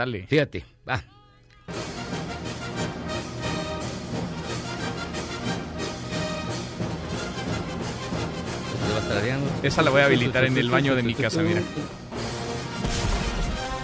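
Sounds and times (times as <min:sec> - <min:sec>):
speech: 0:00.0 - 0:01.2, 0:09.1 - 0:12.0
recorded classical orchestral overture with strings and brass: 0:01.7 - 0:13.8
deep booming cannon-like blast in orchestral music recording: 0:12.8 - 0:13.8.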